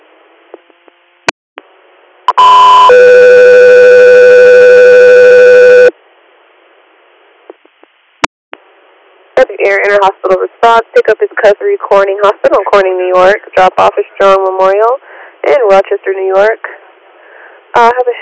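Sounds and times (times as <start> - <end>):
faint radio static hiss: 0.0 - 18.1
radio dispatch alert tone: 2.3 - 5.9
speech: 9.6 - 16.8, 17.7 - 18.1.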